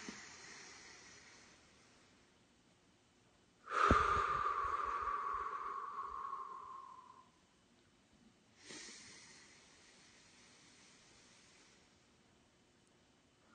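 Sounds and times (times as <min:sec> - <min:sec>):
slow deep breaths in through the nose during a group breathing exercise: 0:00.0 - 0:02.1, 0:03.6 - 0:07.3, 0:08.6 - 0:12.0.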